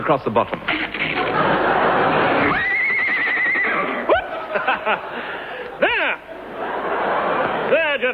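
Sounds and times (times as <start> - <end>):
speech: 0.1 - 1.6, 4.8 - 6.3, 7.7 - 8.1
laughter: 0.7 - 8.1
horse whinnying: 2.5 - 4.2
rough breathy noise: 5.0 - 5.8.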